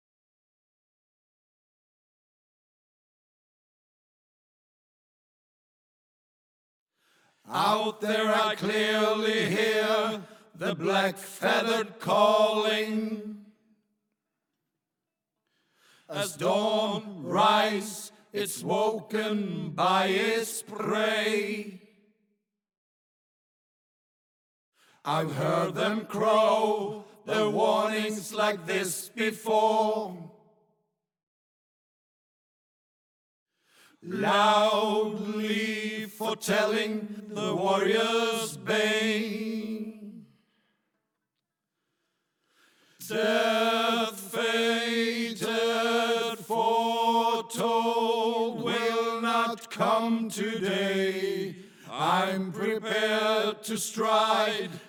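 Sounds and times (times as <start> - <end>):
chorus singing: 7.5 - 13.3, 16.1 - 21.8, 25.1 - 30.3, 34.0 - 40.0, 43.0 - 54.8.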